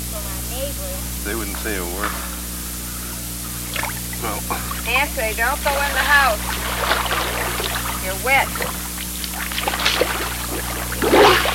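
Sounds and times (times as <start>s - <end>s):
speech: 0.7s - 2.3s, 4.2s - 7.2s, 8.1s - 8.8s
hand splashing water beside a small boat: 3.7s - 4.8s, 5.7s - 11.5s.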